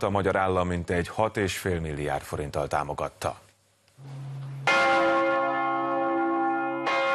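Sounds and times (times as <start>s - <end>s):
speech: 0.0s - 3.4s
church bells of the renovated Matthias Church in Budapest ringing: 4.1s - 7.1s.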